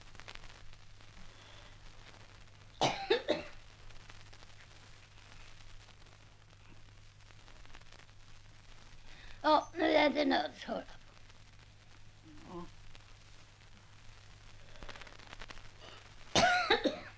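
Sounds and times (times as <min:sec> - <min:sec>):
steady low hum: 0:00.0 - 0:17.1
person coughing: 0:02.8 - 0:03.6, 0:15.8 - 0:17.1
speech: 0:09.5 - 0:11.0.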